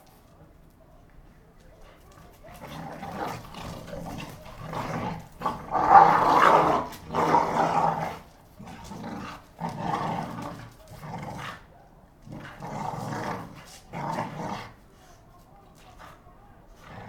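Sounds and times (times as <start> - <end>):
two pit bulls fighting with rasping growls and snarls: 1.8 - 14.9, 16.7 - 17.0.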